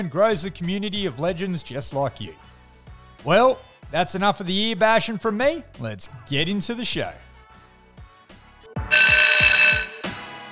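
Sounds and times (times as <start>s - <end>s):
speech: 0.0s - 2.5s, 3.2s - 7.3s
loud electronic buzzer: 8.9s - 10.3s.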